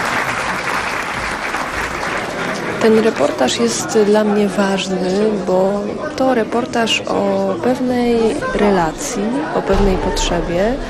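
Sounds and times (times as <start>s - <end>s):
audience applause for award winners at a reportage prize ceremony: 0.0s - 4.0s
speech: 2.8s - 10.8s.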